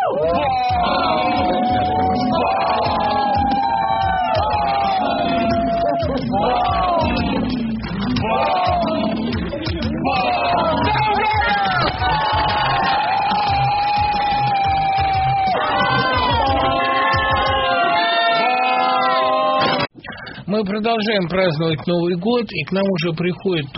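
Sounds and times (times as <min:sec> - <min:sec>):
sustained overlapping cheers and whoops: 0:00.0 - 0:07.3, 0:08.2 - 0:09.3, 0:10.0 - 0:19.9
crowd of many voices shouting hooray at New Year: 0:00.0 - 0:07.4, 0:08.2 - 0:09.3, 0:10.0 - 0:19.8
speech: 0:20.6 - 0:23.7.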